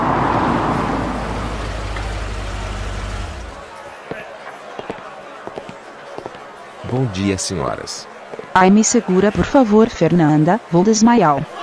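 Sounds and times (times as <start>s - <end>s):
car engine rumbling as the vehicle pulls up: 0.0s - 3.7s
speech: 6.9s - 11.5s.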